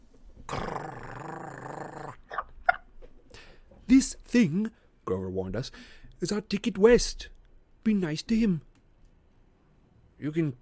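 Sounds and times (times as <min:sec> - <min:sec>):
poodle growling: 0:00.5 - 0:02.3
speech: 0:03.9 - 0:08.7, 0:10.2 - 0:10.6.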